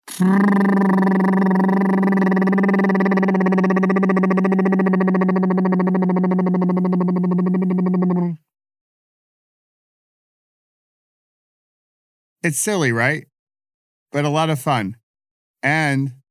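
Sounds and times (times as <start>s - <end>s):
person blubbering lips while breathing out: 0.0s - 8.4s
speech: 0.2s - 1.6s, 12.5s - 13.3s, 14.2s - 15.0s, 15.6s - 16.2s.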